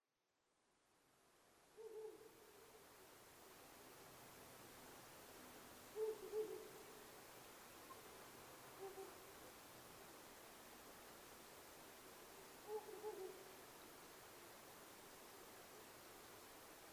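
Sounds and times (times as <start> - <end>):
steady background hiss: 0.0 - 16.9
owl giving low soft hoots: 1.8 - 2.4, 6.0 - 6.8, 8.8 - 9.2, 12.6 - 13.5.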